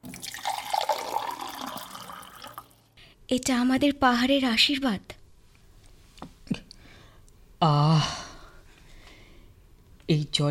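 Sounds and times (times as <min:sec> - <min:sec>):
cool spring water pouring from a clay pitcher for drinking: 0:00.0 - 0:02.9
speech: 0:03.3 - 0:05.2, 0:10.1 - 0:10.4.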